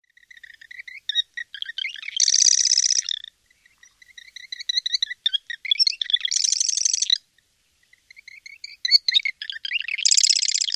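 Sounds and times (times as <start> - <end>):
eastern subspecies marsh wren singing: 0.0 - 7.2, 7.8 - 10.7.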